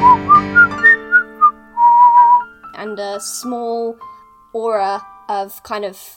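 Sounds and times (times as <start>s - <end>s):
person whistling a short tune: 0.0s - 2.5s
speech: 3.0s - 6.1s.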